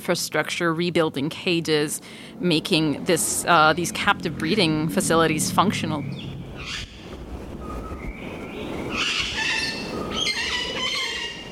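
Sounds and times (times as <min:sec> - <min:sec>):
speech: 0:00.0 - 0:06.9
steady noisy background: 0:00.0 - 0:11.4
Puerto Rican parrots calling with squawks and screeches: 0:06.1 - 0:07.0, 0:08.9 - 0:11.4.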